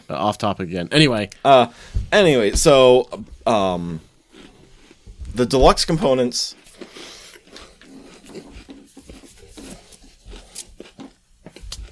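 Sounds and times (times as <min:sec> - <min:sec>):
speech: 0:00.1 - 0:04.1, 0:05.3 - 0:07.2
person chewing a cookie: 0:03.5 - 0:05.1, 0:06.5 - 0:11.9.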